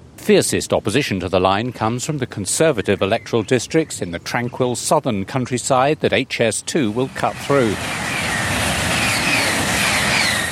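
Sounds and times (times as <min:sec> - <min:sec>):
speech: 0:00.3 - 0:08.1
high-speed train in France roaring past: 0:05.8 - 0:10.5.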